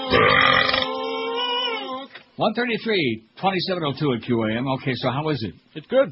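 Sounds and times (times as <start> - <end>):
person burping: 0.1 - 0.9
speech: 2.4 - 6.0.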